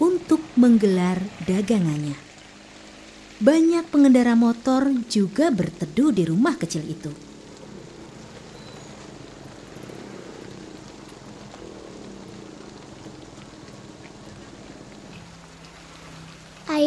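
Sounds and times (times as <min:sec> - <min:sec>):
rain falling at a small roadside shelter: 0:00.0 - 0:16.8
speech: 0:00.6 - 0:02.3, 0:03.4 - 0:07.3.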